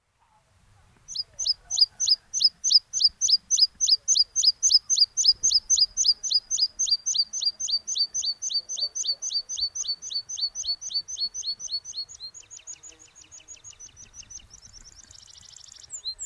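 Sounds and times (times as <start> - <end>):
meadow pipit calling: 1.1 - 14.7.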